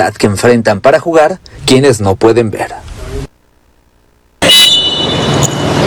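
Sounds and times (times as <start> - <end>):
speech: 0.0 - 2.9
shrill referee's whistle starting a football match: 4.4 - 5.7.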